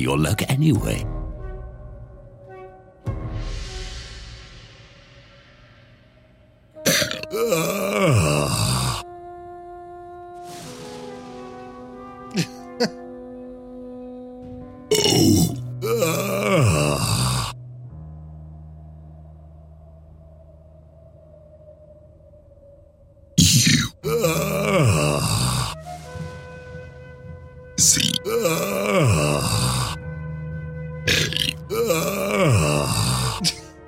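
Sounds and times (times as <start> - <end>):
speech: 0.0 - 1.1
person burping letters of the alphabet: 6.9 - 9.0, 14.9 - 17.6, 23.4 - 25.8, 27.8 - 30.0, 31.1 - 33.7.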